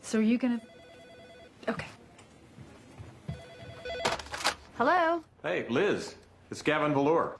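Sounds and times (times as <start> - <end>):
speech: 0.1 - 0.8, 1.6 - 2.0, 4.8 - 7.3
phone ringing with a bright electronic tone: 0.3 - 2.0, 3.3 - 4.7.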